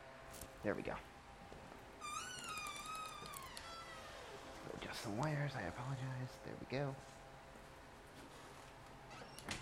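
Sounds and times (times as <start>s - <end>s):
speech: 0.6s - 1.1s, 4.8s - 7.2s
door squeaking as it is moved: 2.0s - 4.5s, 9.1s - 9.6s.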